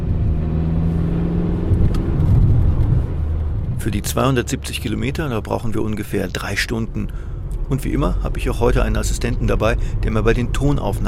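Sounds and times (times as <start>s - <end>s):
car engine rumble setting off on a drive: 0.0s - 11.0s
speech: 3.8s - 11.0s.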